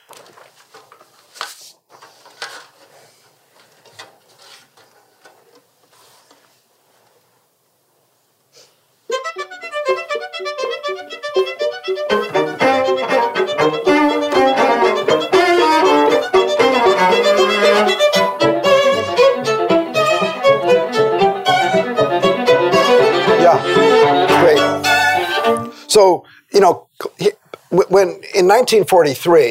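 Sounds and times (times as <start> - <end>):
classical ensemble playing the opening of a first movement: 9.1 - 26.0
speech: 28.5 - 29.4.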